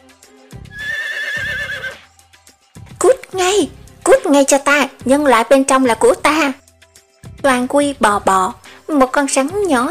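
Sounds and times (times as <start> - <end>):
horned horse leading the herd neighing: 0.7 - 2.0
speech: 3.3 - 6.6, 7.4 - 9.9.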